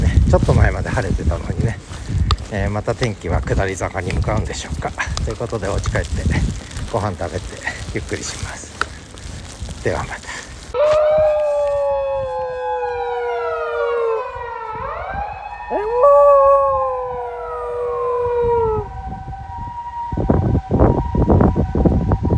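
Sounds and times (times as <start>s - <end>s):
wind buffeting the microphone: 0.0s - 22.3s
speech: 0.3s - 8.6s, 9.8s - 11.3s
ambulance siren passing outdoors in sleety snow: 10.8s - 22.3s.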